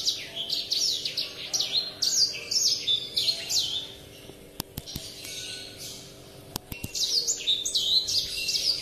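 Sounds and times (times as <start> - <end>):
Oriental magpie-robin whistled song: 0.0 - 4.0, 4.8 - 8.8
sharp clicks: 4.6 - 5.4, 6.5 - 7.1.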